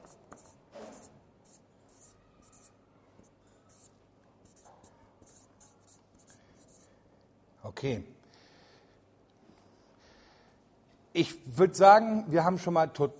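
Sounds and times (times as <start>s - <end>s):
pen scratching as words are written by hand: 0.0s - 2.8s, 3.7s - 6.9s
speech: 7.7s - 8.2s, 11.2s - 13.1s.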